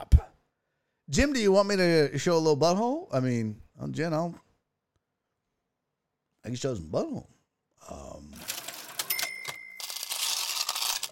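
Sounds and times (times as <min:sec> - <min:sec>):
speech: 0:01.1 - 0:04.4, 0:06.4 - 0:08.5
bright ringing cash register ding: 0:08.4 - 0:10.6.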